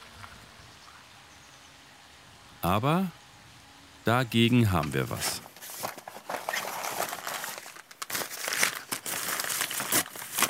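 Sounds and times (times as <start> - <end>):
speech: 2.6 - 3.2, 4.0 - 5.5
chocolate wrapper crinkling: 5.4 - 10.4.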